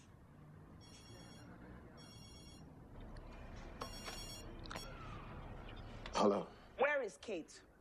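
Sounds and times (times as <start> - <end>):
telephone ringing in short bright trilling bursts: 0.8 - 2.7, 3.8 - 4.9
speech: 6.3 - 7.7.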